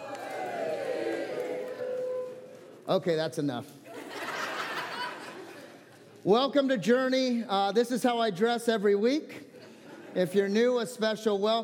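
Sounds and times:
large audience cheering and shouting: 0.0 - 2.8
speech: 2.9 - 3.8, 6.2 - 9.5, 10.1 - 11.6
laughter: 3.9 - 6.1, 9.5 - 10.7.

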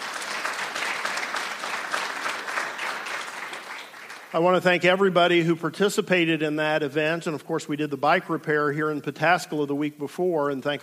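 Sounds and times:
audience applauding: 0.0 - 4.7
speech: 4.3 - 10.8.

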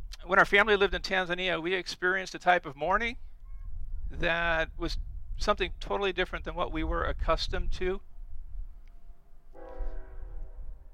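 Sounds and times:
speech: 0.3 - 3.3, 4.1 - 8.1
passing train rumbling: 5.4 - 10.9
train horn: 9.5 - 10.9.

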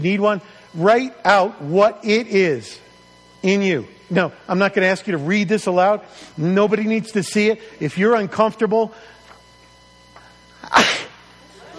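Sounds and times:
speech: 0.0 - 2.8, 3.4 - 9.1
faint breath in: 6.1 - 6.4, 8.9 - 9.4
single human sneeze: 10.6 - 11.3.

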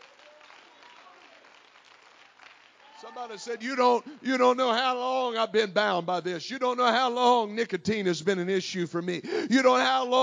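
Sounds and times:
congregation clapping hands: 0.0 - 4.8
speech: 3.0 - 10.2.

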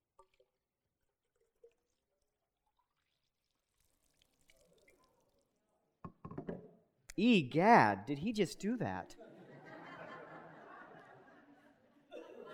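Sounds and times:
water pouring into a cup: 1.0 - 5.7
speech: 7.2 - 9.2
laughter: 8.6 - 12.5.

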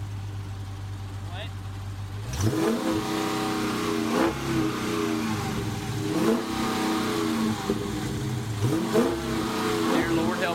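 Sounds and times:
family's newly acquired car engine revving: 0.2 - 10.5.

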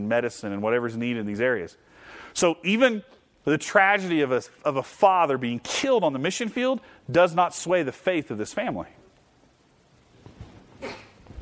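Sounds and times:
speech: 0.0 - 9.0
person sneezing: 10.8 - 11.2.

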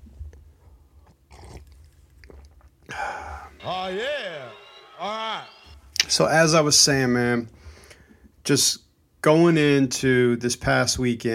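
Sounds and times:
faint wet mouth clicks: 1.0 - 2.8
person sipping hot coffee: 1.1 - 2.8
speech: 3.0 - 7.6, 8.5 - 11.3.

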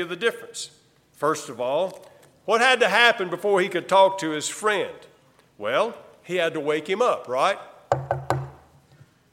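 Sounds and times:
speech: 0.0 - 8.1
knocking on a door: 7.9 - 8.6.

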